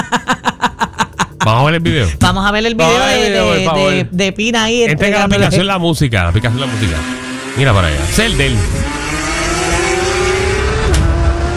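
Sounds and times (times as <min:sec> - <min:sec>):
laughter: 0:00.0 - 0:02.2
speech: 0:01.5 - 0:09.2
Porsche car engine revving loudly: 0:06.3 - 0:11.5.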